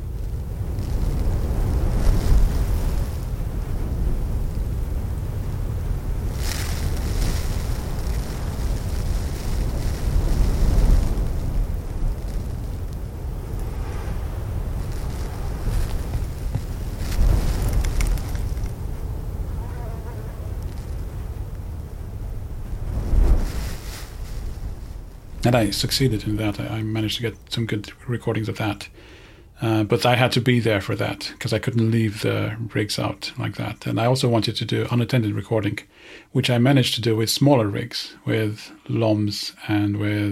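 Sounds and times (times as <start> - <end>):
steady wind rushing and rumbling: 0.0 - 26.7
blown sand grains pattering onto a crusted sand surface: 0.0 - 28.8
speech: 25.4 - 40.2.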